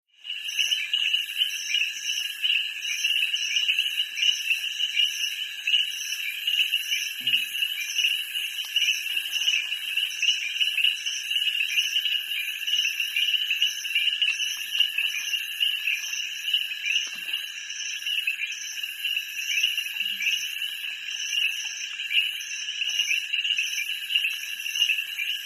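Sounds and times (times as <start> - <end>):
distant peeper frogs calling: 0.2 - 25.4.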